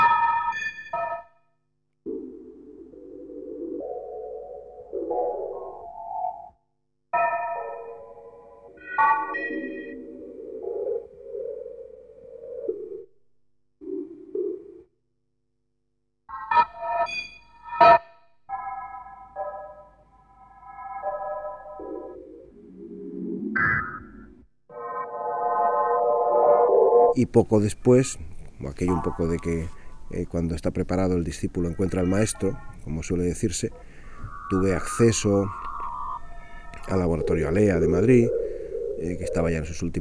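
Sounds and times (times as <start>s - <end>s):
early electronic music of synthetic sine tones: 0.0s - 13.1s, 16.3s - 27.2s, 31.7s - 40.0s
speech: 27.2s - 33.9s, 34.5s - 35.6s, 36.9s - 38.4s, 39.0s - 40.0s.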